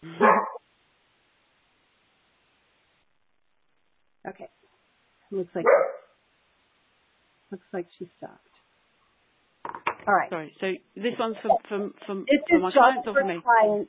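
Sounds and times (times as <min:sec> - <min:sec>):
dog barking at a delivery at the door: 0:00.2 - 0:00.6, 0:05.6 - 0:06.1
speech: 0:05.3 - 0:06.0, 0:07.5 - 0:08.5, 0:10.0 - 0:13.8.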